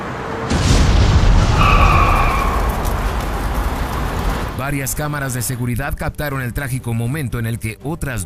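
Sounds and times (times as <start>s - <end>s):
heavy roaring rumble: 0.0s - 5.1s
small plane crash impact on landing at an airport in Malaysia: 0.4s - 4.6s
small plane explosion: 0.4s - 5.2s
high-pitched screech: 1.4s - 2.9s
speech: 4.7s - 8.2s.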